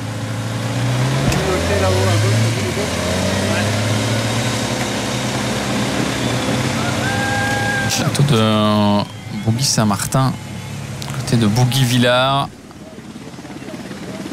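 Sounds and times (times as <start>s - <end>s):
motorcycle engine droning: 0.0s - 14.3s
faint indistinct voices: 1.2s - 4.5s, 6.7s - 14.3s
speech: 8.0s - 10.5s, 11.3s - 12.6s.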